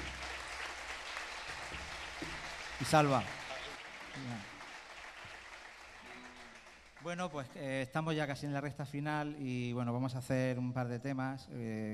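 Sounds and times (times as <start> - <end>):
live audience applauding: 0.0 - 7.6
speech: 2.8 - 3.4, 7.0 - 11.9.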